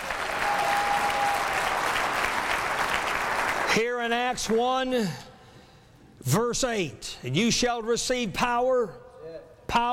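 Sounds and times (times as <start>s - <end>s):
audience applause: 0.0s - 3.8s
speech: 3.7s - 5.3s, 6.2s - 9.0s, 9.7s - 9.9s.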